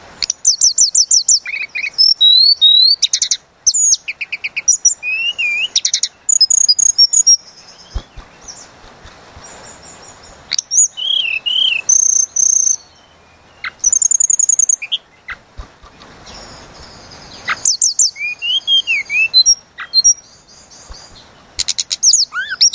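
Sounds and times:
Sunda robin song lure recording: 0:00.0 - 0:22.7.

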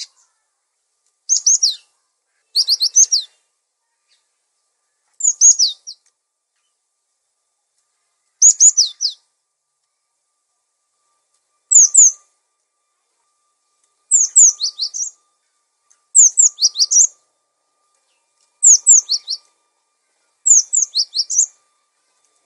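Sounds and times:
songbird twittering: 0:01.3 - 0:04.4, 0:05.2 - 0:06.8, 0:08.4 - 0:09.3, 0:11.7 - 0:12.3, 0:14.1 - 0:17.2, 0:18.0 - 0:19.5, 0:20.4 - 0:21.7.

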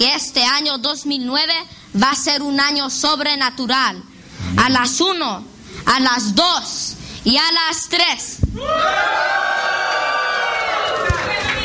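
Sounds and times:
speech: 0:00.0 - 0:10.1
church congregation shouting a cry of jubilation: 0:08.6 - 0:11.6.

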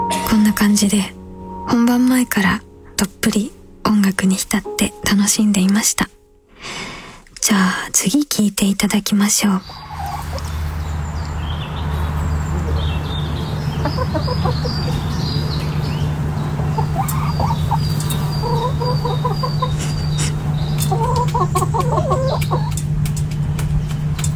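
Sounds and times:
steady low hum: 0:00.1 - 0:24.3
speech: 0:00.6 - 0:06.8, 0:07.5 - 0:09.8
chickens clucking in England: 0:09.6 - 0:24.3.

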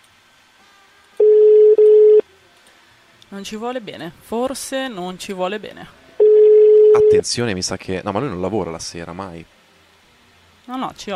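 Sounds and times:
telephone ringing tone during a phone call: 0:01.2 - 0:02.2, 0:06.2 - 0:07.2
speech: 0:03.3 - 0:06.0, 0:07.0 - 0:09.6, 0:10.7 - 0:11.1.

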